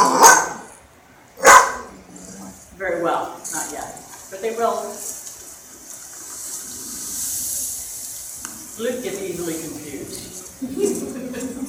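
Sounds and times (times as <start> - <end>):
dog barking sharply to protect a puppy: 0.0 - 0.8, 1.4 - 2.0
speech: 4.4 - 5.1, 8.8 - 11.6
laughter: 10.6 - 11.6.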